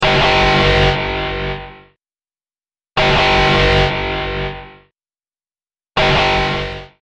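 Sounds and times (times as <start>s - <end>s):
sci-fi alarm: 0.0s - 2.0s, 3.0s - 4.9s, 6.0s - 7.0s.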